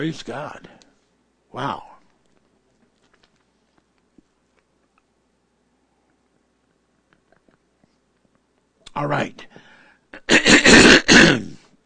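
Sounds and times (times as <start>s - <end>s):
speech: 0.0s - 0.8s, 1.5s - 1.9s, 9.0s - 9.6s
throat-clearing cough: 10.2s - 11.6s.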